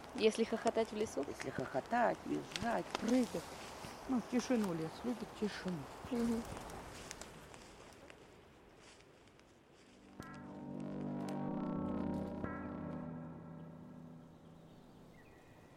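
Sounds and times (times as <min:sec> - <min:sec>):
rustling in a forest: 0:00.0 - 0:13.0
crunching footsteps in a forest: 0:00.0 - 0:14.4
speech: 0:00.2 - 0:06.7
loud low droning tone: 0:10.0 - 0:15.3.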